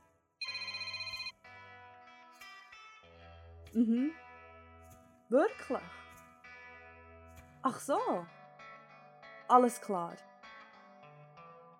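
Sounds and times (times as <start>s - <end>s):
phone ringing with a bright electronic ringtone: 0.4s - 1.4s
speech: 3.7s - 4.2s, 5.3s - 6.0s, 7.6s - 8.4s, 9.5s - 10.3s.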